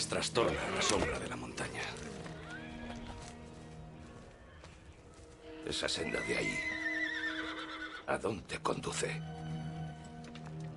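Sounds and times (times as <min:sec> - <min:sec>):
speech: 0:00.0 - 0:02.1, 0:05.7 - 0:06.8, 0:08.1 - 0:09.4
restless horses neighing and whinnying: 0:00.3 - 0:03.4, 0:06.0 - 0:08.2.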